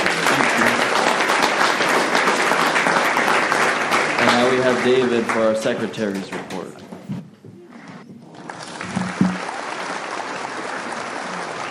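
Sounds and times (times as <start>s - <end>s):
room full of people applauding: 0.0s - 6.4s, 8.2s - 11.6s
speech: 4.6s - 6.4s.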